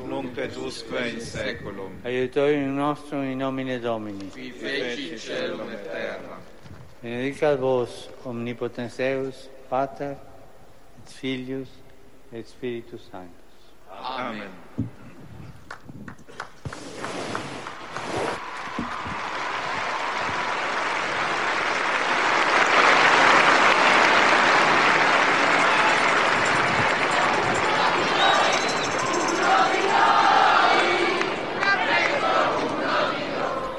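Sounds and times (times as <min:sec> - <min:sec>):
speech: 0:00.1 - 0:06.4, 0:07.0 - 0:10.3, 0:11.0 - 0:15.0
large crowd applauding and cheering at a papal audience: 0:16.4 - 0:33.7
scattered shouts and voices: 0:25.6 - 0:33.7.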